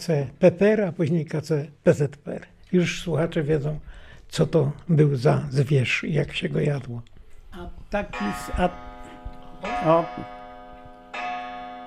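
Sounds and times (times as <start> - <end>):
speech: 0.0 - 8.8, 9.6 - 10.4
mechanical clock ticking faintly: 7.6 - 11.6
mechanical clock resonant strikes with sustained metallic tone: 8.0 - 11.8.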